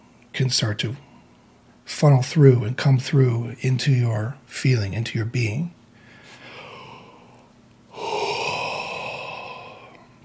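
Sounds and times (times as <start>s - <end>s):
speech: 0.4s - 1.1s, 1.9s - 5.8s
long human yawn: 6.3s - 10.2s.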